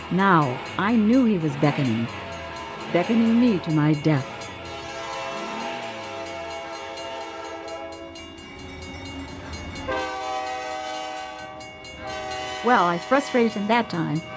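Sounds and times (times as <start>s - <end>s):
low rumble of an approaching train: 0.0s - 14.3s
speech: 0.1s - 2.2s, 2.9s - 4.3s, 12.6s - 14.3s
approaching train wailing whistle: 1.4s - 8.2s, 9.9s - 14.3s.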